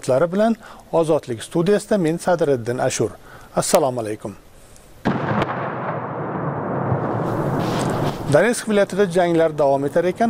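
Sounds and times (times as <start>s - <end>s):
speech: 0.0s - 4.4s, 8.3s - 10.2s
war explosions in the streets of Chasiv Yar in Donetsk region: 5.1s - 8.4s.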